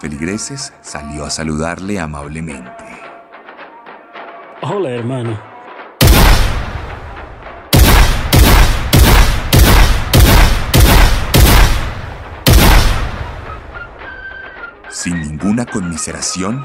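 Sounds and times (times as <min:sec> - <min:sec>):
speech: 0:00.0 - 0:03.1, 0:04.6 - 0:05.5, 0:15.0 - 0:16.6
shotgun blasts fired at a building facade: 0:06.0 - 0:14.0.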